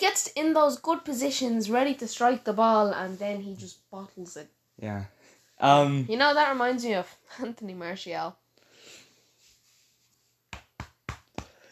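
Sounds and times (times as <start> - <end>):
speech: 0.0 - 8.4
hand patting someone's back: 10.5 - 11.7.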